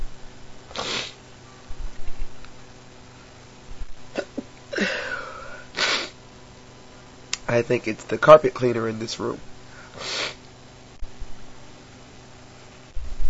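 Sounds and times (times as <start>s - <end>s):
person sneezing: 0.7s - 1.2s, 4.2s - 6.2s, 10.0s - 10.4s
speech: 7.5s - 9.5s.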